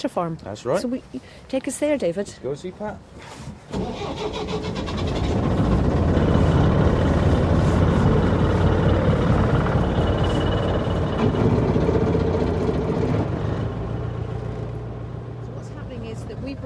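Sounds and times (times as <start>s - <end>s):
speech: 0.0s - 5.5s
small ferry boat engine on the River Dart: 4.6s - 14.0s.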